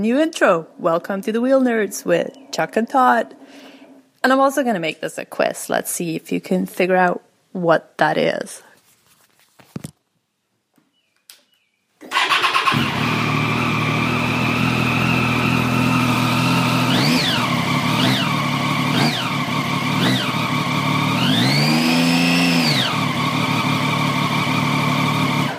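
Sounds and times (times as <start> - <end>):
speech: 0.0 - 8.7
motorcycle engine revving at high speed: 12.1 - 25.5.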